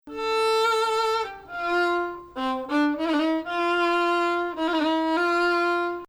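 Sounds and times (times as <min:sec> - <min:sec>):
Maqam Bayati Ajam melody including notes under tonic: 0:00.1 - 0:06.0.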